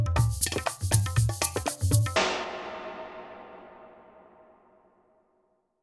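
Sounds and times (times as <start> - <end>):
tribal rhythm drum hit: 0.2 - 4.6.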